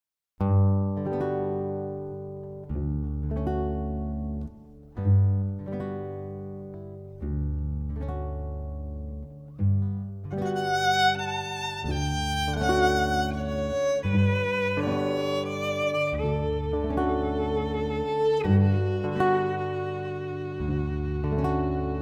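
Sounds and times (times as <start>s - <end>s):
guitar: 0.4s - 21.9s
cello: 2.6s - 21.9s
violin: 10.3s - 21.9s.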